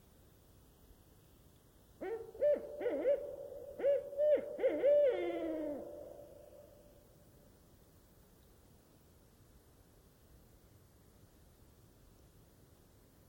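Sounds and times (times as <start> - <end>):
barred owl hooting in a night forest: 2.0 - 7.0.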